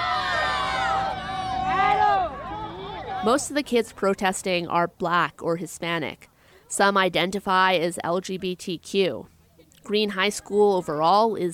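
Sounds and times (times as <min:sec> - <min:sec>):
group of students cheering and shouting outside a high school: 0:00.0 - 0:03.8
speech: 0:03.2 - 0:11.5.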